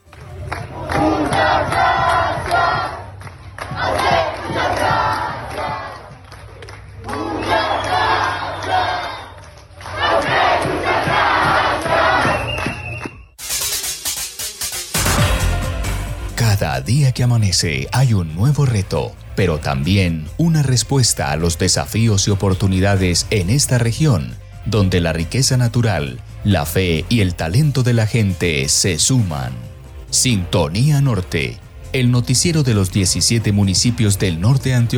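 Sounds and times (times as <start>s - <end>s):
large protest crowd chanting tribute to health workers: 0.0s - 6.4s, 7.0s - 12.8s
sudden burst of broadband noise: 13.4s - 15.8s
speech: 17.1s - 34.9s.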